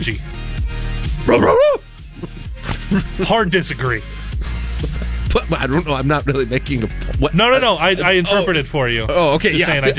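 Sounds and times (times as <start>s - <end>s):
speech: 0.0s - 0.4s, 1.1s - 1.8s, 2.9s - 4.5s, 5.3s - 9.9s
dog barking: 1.2s - 3.2s
dog yelping: 1.3s - 2.9s
laughter: 1.6s - 9.9s.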